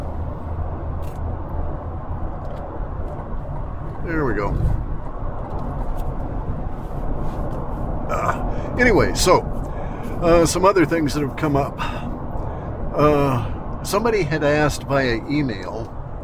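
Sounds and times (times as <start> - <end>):
car driving through traffic: 0.0 - 16.2
low road noise: 0.0 - 16.2
speech: 4.1 - 4.9, 8.8 - 9.5, 10.2 - 12.1, 13.0 - 16.0.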